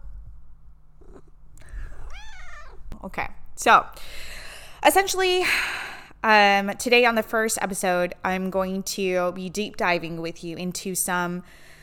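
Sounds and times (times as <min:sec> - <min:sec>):
faint low rumble: 0:00.0 - 0:05.5
female pet cat meowing while being petted: 0:01.0 - 0:02.9
speech: 0:03.0 - 0:11.8.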